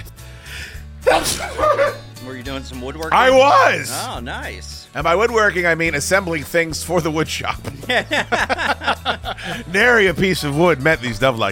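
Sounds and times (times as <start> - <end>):
laughter: 1.0 - 2.2, 7.7 - 10.1
person sneezing: 1.1 - 2.0
speech: 1.1 - 8.8, 9.4 - 11.4.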